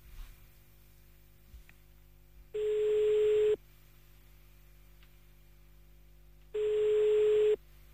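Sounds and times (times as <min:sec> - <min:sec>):
ringback tone of an outgoing phone call: 0:02.6 - 0:03.6, 0:06.6 - 0:07.6.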